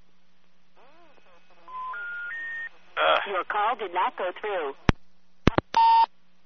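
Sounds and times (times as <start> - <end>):
rising three-note electronic phone tone during dialing: 1.6 - 2.7
person talking over the phone line: 3.0 - 4.9.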